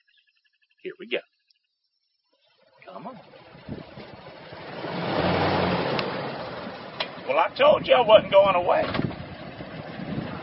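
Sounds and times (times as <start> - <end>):
speech: 0.8 - 1.3, 2.9 - 3.9, 7.3 - 9.0
truck engine humming: 2.3 - 10.4.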